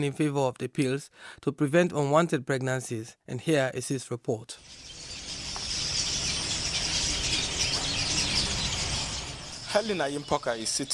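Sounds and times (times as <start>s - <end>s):
speech: 0.0s - 5.0s, 9.7s - 10.9s
birds chirping loudly in a mango tree: 4.6s - 10.9s.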